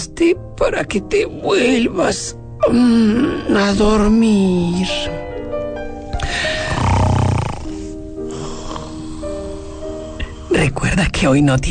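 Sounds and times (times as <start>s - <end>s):
steady tonal background: 0.0s - 11.6s
speech: 0.1s - 5.3s, 6.2s - 7.2s, 10.7s - 11.6s
loud rasping snoring: 6.3s - 10.6s.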